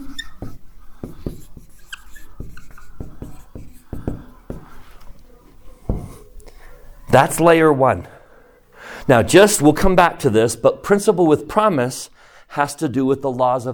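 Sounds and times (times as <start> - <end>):
writing on a board: 0.0 - 6.3
speech: 7.1 - 8.1, 9.1 - 13.7.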